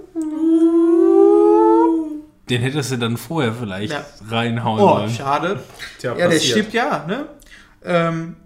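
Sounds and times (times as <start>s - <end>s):
sustained wolf howl sound effect: 0.2s - 2.2s
speech: 2.5s - 8.4s.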